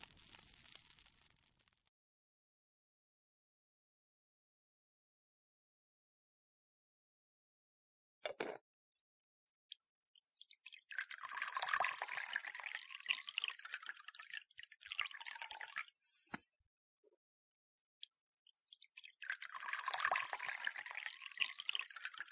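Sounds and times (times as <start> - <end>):
hot water being poured to make tea: 0.0 - 1.5, 10.4 - 16.3, 18.7 - 22.3.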